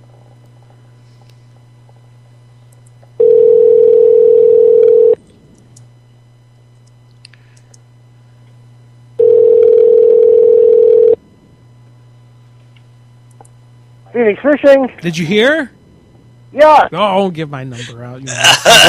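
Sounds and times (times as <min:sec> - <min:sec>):
low hum: 0:00.0 - 0:18.8
telephone line beeps: 0:03.2 - 0:05.2, 0:09.2 - 0:11.2
speech: 0:14.2 - 0:15.8, 0:16.6 - 0:18.8
laughter: 0:17.8 - 0:18.8.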